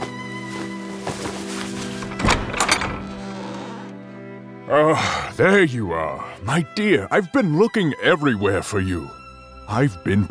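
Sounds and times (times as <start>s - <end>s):
sustained music: 0.0s - 10.2s
door flung open with a heavy thunk: 1.9s - 3.6s
speech: 4.7s - 10.2s.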